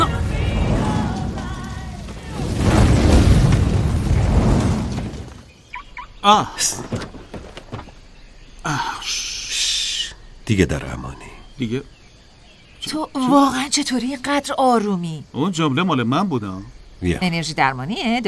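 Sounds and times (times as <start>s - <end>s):
explosion with loud sustained low rumble: 0.0s - 5.5s
speech: 6.2s - 7.0s, 8.6s - 9.3s, 10.5s - 12.0s, 12.8s - 18.2s.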